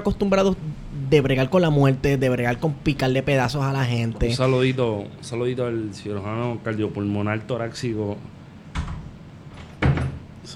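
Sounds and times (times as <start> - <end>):
speech: 0.0 - 8.4
door bumping and clunking: 8.7 - 10.4.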